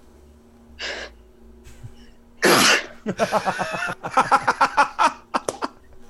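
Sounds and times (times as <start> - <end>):
sharp inhale: 0.8 - 1.2
person sneezing: 2.4 - 3.0
laughter: 3.0 - 5.8.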